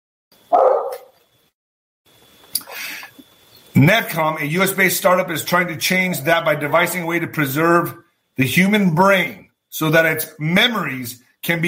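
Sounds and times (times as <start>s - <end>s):
faint steady hum: 0.4s - 11.6s
dogs barking: 0.5s - 1.2s
speech: 3.8s - 11.6s.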